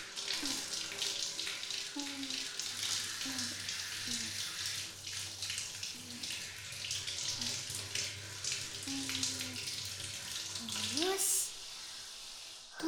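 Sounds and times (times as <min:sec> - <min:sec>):
running tap water while hair is rinsed and shampoo washed out: 0:00.0 - 0:12.8.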